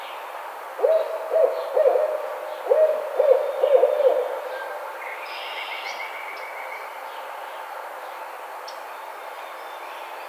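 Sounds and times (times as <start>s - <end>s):
barred owl hooting: 0.8s - 4.8s.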